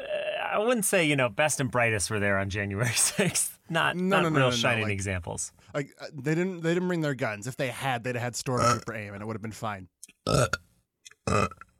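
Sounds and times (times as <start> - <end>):
speech: 0.5 - 10.7, 11.3 - 11.6
loud burps: 10.2 - 11.7.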